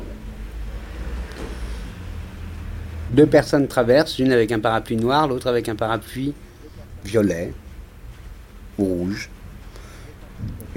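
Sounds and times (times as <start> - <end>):
heavy truck rumbling past on a street: 0.0 - 4.7
general street traffic hum: 0.0 - 10.7
speech: 3.1 - 7.6, 8.8 - 9.4, 10.4 - 10.7.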